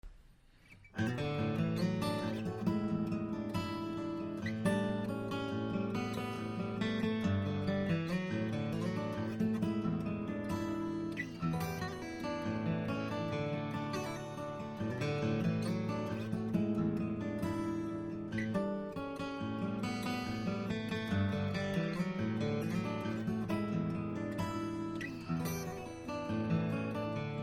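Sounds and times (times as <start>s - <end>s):
Collings D1 acoustic guitar: 0.0s - 27.4s.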